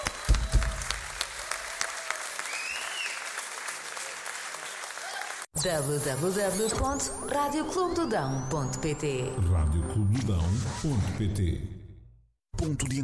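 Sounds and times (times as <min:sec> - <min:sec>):
crowd applauding with dense clapping: 0:00.0 - 0:05.5
speech: 0:05.6 - 0:11.8, 0:12.6 - 0:13.0.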